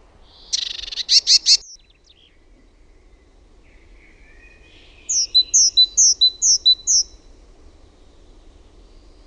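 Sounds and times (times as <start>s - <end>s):
great tit churring and calling: 0.3s - 2.0s, 5.1s - 7.2s.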